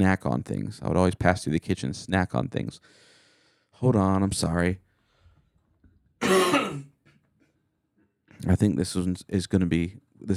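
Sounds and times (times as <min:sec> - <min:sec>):
speech: 0:00.0 - 0:03.1, 0:03.8 - 0:04.8, 0:08.4 - 0:10.3
faint breath: 0:02.8 - 0:03.8, 0:04.9 - 0:05.6
cough: 0:06.2 - 0:07.2
harsh raspy throat clearing: 0:06.2 - 0:07.2.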